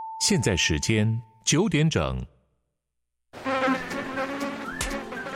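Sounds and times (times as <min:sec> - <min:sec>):
speech: 0:00.3 - 0:02.3
mosquito buzzing: 0:03.4 - 0:05.3.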